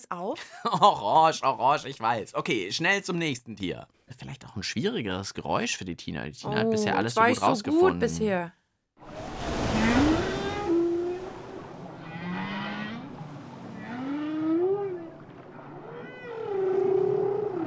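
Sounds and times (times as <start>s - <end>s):
speech: 0.0s - 9.2s
low watery rumble: 9.0s - 17.6s
whale singing: 9.6s - 17.6s.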